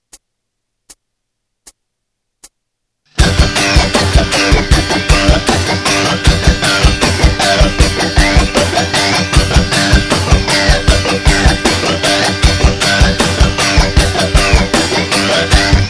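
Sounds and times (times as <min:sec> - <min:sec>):
guitar scratch: 0:03.1 - 0:15.8.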